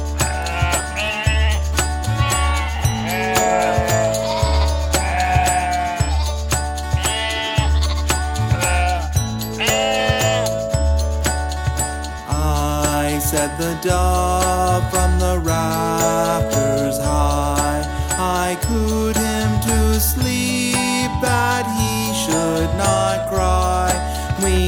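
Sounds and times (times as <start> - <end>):
light jingling bells: 0.0 - 24.6
musical backing with a bass line: 0.0 - 24.6
sheep bleating: 0.2 - 10.6.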